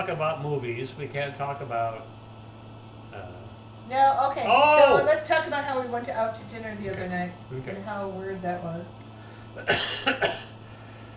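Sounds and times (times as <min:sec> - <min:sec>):
speech: 0:00.0 - 0:02.2, 0:03.1 - 0:09.0, 0:09.6 - 0:10.5
person coughing raspily: 0:09.6 - 0:10.6.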